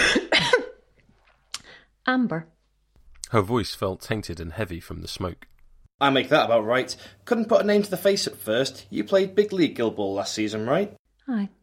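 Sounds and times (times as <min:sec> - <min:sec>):
single short raspy cough: 0:00.0 - 0:00.8
speech: 0:02.1 - 0:02.6, 0:03.3 - 0:11.6.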